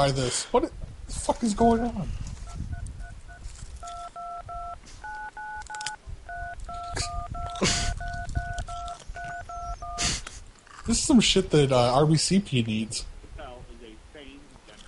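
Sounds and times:
speech: 0.0s - 2.2s, 10.9s - 13.1s
telephone on-hold music of rapid touch-tone keypad beeps: 2.4s - 10.1s
static bursts over a rough noisy telephone background: 2.4s - 10.5s.

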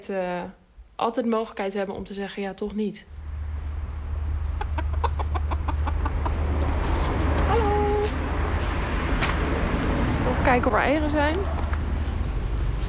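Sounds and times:
speech: 0.0s - 3.2s, 10.5s - 11.6s
low steady hum: 3.0s - 12.8s
chickens clucking at a backyard coop: 3.2s - 10.4s.

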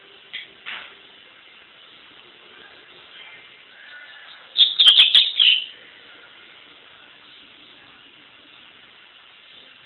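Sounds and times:
double-collared seedeater singing bright high chirpy notes: 4.4s - 5.8s.

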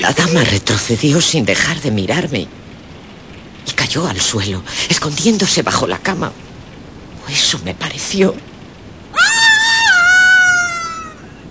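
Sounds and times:
speech: 0.0s - 2.7s, 3.6s - 6.5s, 7.3s - 8.5s
woman screaming in fear: 9.1s - 11.4s.

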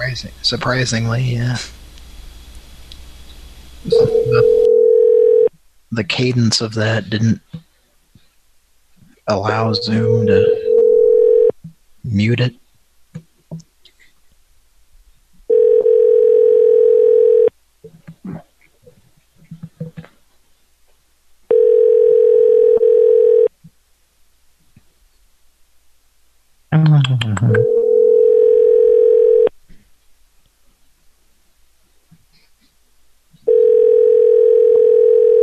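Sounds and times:
speech: 0.0s - 1.8s, 3.8s - 4.4s, 6.0s - 7.6s, 9.3s - 10.6s, 12.1s - 12.6s
telephone ringback tone of an outgoing call: 3.9s - 5.5s, 9.8s - 11.5s, 15.5s - 17.5s, 21.5s - 23.5s, 27.6s - 29.5s, 33.5s - 35.4s.

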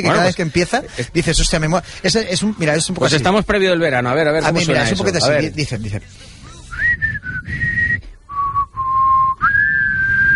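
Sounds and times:
speech: 0.0s - 6.3s
person whistling a catchy theme tune: 6.6s - 10.3s.

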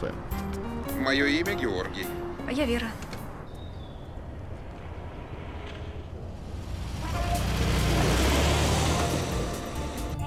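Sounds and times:
speech: 0.0s - 0.4s, 1.0s - 3.0s
small red car speeding along a highway: 6.3s - 10.2s.

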